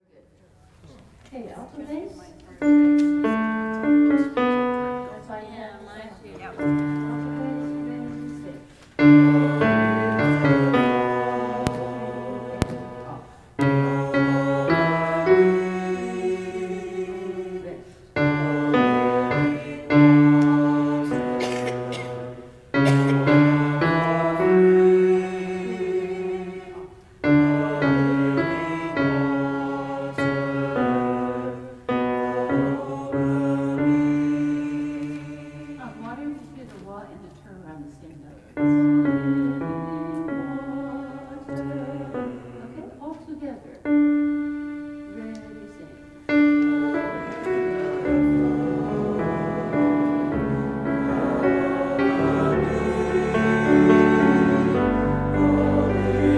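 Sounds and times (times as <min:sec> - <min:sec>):
alto voice: 0:02.5 - 0:36.9, 0:38.6 - 0:56.3.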